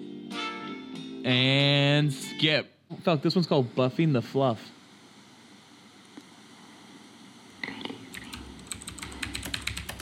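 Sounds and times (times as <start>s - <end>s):
speech: 1.2s - 4.8s
low hum: 1.3s - 10.0s
rapid typing on a computer keyboard: 8.1s - 10.0s.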